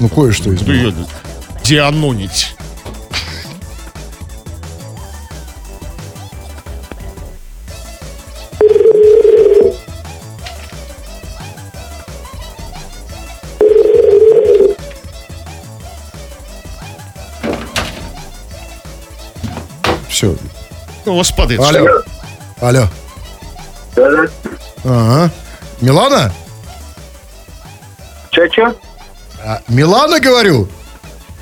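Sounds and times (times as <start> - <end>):
speech: 0.0 - 2.6, 21.1 - 23.0, 24.0 - 26.4, 28.4 - 30.8
telephone dialing tones and dial tone: 8.5 - 9.8, 13.5 - 14.8, 21.7 - 22.1, 23.9 - 24.6.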